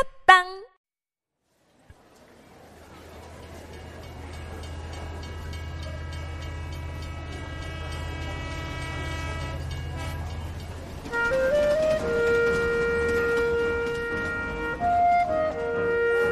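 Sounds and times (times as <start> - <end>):
speech: 0.0 - 0.7
passing train wheels clacking over a deep rumble: 2.9 - 16.3
passing train horn: 5.9 - 16.3.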